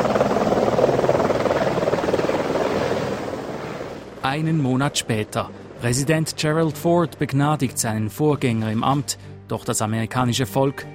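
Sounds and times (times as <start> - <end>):
helicopter engine whine: 0.0 - 5.8
helicopter rotor chopping as it lifts off: 0.0 - 6.6
speech: 4.3 - 10.9.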